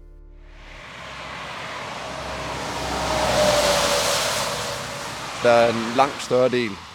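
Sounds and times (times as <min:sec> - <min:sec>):
car sweeping past on a road: 0:00.4 - 0:06.9
faint steady hum of traffic: 0:00.5 - 0:06.9
speech: 0:05.4 - 0:06.9.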